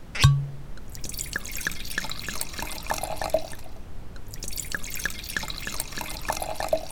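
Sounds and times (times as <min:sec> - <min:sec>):
drink poured into a glass: 0:00.9 - 0:06.9.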